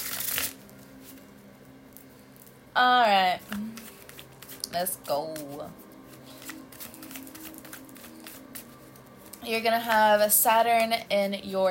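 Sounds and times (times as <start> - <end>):
tarot card deck shuffling: 0.0 - 1.2, 3.4 - 10.0
low steady hum: 0.0 - 11.7
speech: 2.8 - 3.6, 4.7 - 5.8, 9.4 - 11.7.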